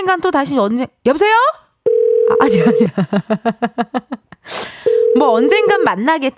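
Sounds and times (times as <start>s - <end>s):
speech: 0.0s - 1.6s, 2.3s - 6.3s
steady telephone dial tone after call drops: 1.9s - 2.5s, 4.9s - 5.9s
even buzzy beeps after a call drops: 4.9s - 6.0s.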